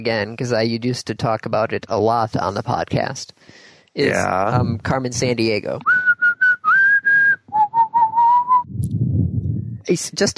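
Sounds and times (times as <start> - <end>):
speech: 0.0 - 6.1, 9.9 - 10.3
person whistling a short bouncy tune: 5.9 - 8.7
low rumble: 8.6 - 9.9.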